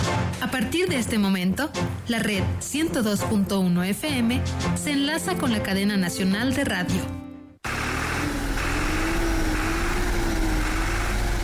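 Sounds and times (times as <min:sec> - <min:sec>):
speech: 0:00.4 - 0:07.2
tractor engine running: 0:07.6 - 0:11.4.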